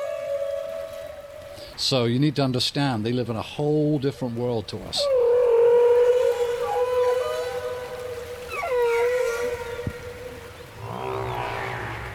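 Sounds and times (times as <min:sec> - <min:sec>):
long eerie whale call underwater: 0:00.0 - 0:01.6, 0:05.0 - 0:12.1
speech: 0:01.8 - 0:05.2.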